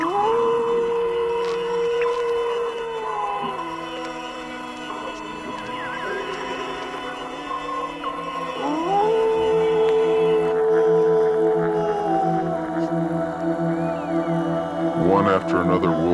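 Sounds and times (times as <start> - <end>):
wolves howling in chorus: 0.0 - 16.1.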